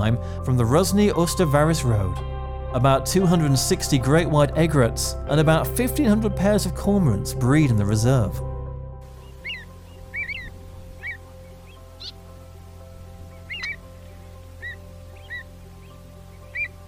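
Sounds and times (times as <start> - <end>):
speech: 0.0 - 8.5
avocet calls in Lithuania: 9.1 - 16.8.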